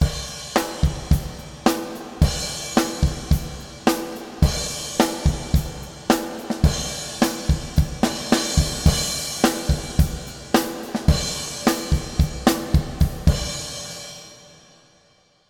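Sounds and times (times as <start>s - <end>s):
drums with reverb in a painted gym: 0.0s - 15.1s.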